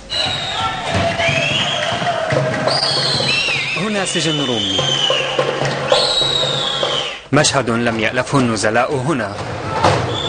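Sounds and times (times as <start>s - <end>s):
crowd at a prison football match cheering and murmuring in Roumieh prison, Lebanon: 0.0s - 7.3s, 9.3s - 10.2s
speech: 4.0s - 5.5s, 7.3s - 9.7s.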